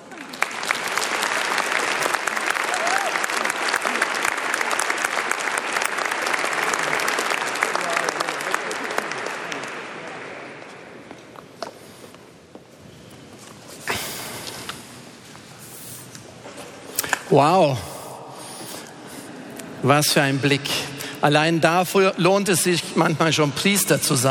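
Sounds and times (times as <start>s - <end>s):
large audience applauding in a church: 0.0s - 10.9s
speech: 17.4s - 17.9s, 19.8s - 24.2s.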